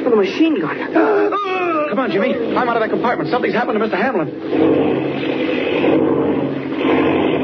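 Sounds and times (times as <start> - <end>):
speech: 0.2 - 6.2
airplane engine roaring as plane spins out of control: 2.1 - 7.4.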